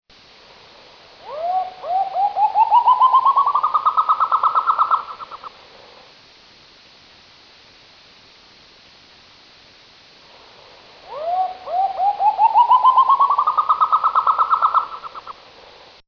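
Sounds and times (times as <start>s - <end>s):
white-throated nightjar: 0.4s - 6.2s, 10.2s - 16.0s.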